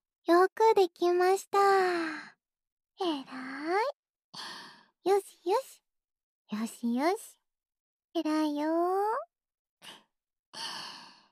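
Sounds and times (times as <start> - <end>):
speech: 0.2 - 2.3, 3.0 - 5.8, 6.5 - 7.4, 8.2 - 10.0, 10.6 - 11.0
deep breath during a calming exercise: 9.8 - 11.3.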